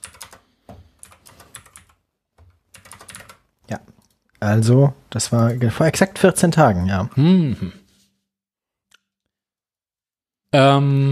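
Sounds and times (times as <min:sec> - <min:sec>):
computer keyboard typing: 0:00.0 - 0:04.2
speech: 0:03.7 - 0:07.8, 0:10.5 - 0:11.0.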